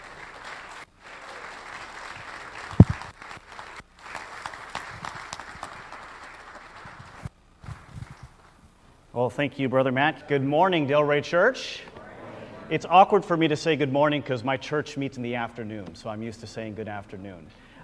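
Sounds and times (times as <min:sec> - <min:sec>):
church audience applause welcoming a guest speaker: 0:00.0 - 0:07.3
speech: 0:09.2 - 0:11.9, 0:12.7 - 0:17.7.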